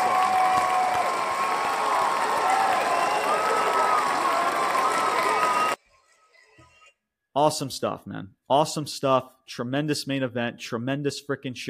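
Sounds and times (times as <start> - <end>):
large crowd applauding: 0.0 - 5.8
speech: 7.4 - 11.6.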